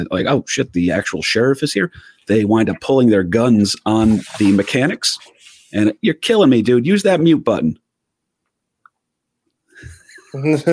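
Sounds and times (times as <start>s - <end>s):
speech: 0.0s - 7.8s, 9.8s - 10.7s
paper rustling and handling at the microphone: 3.9s - 5.7s.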